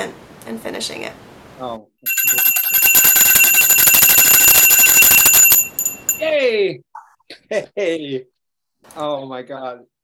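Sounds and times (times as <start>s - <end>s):
speech: 0.0s - 2.8s, 6.2s - 9.9s
small handheld bell rung rapidly: 2.1s - 6.3s.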